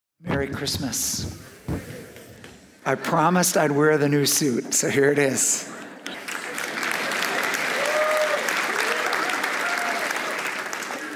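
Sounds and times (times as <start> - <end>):
speech: 0.3 - 2.0, 2.9 - 5.8
audience applause: 6.0 - 11.1.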